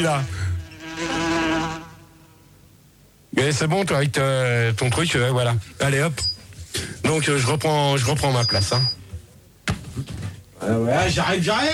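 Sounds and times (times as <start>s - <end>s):
speech: 0.0s - 0.4s, 3.4s - 9.0s, 10.0s - 11.7s
housefly buzzing in a studio: 0.0s - 2.4s.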